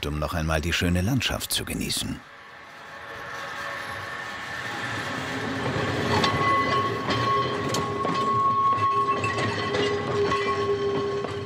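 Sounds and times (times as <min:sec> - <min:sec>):
speech: 0:00.0 - 0:02.4
historic tram rolling slowly downhill on rails: 0:00.0 - 0:11.4
metallic squeals of tram: 0:02.8 - 0:11.4.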